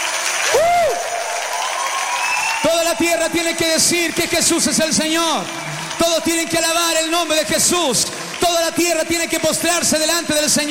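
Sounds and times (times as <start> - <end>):
church congregation clapping at a worship service: 0.0 - 10.6
speech: 3.0 - 10.6.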